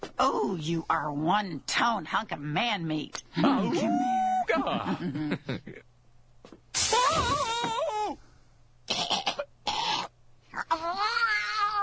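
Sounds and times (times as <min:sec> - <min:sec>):
low steady hum: 0:00.0 - 0:11.8
speech: 0:00.2 - 0:05.9, 0:06.9 - 0:08.2
laughter: 0:03.5 - 0:05.8
cat yowling in long wavering cries: 0:03.7 - 0:04.5.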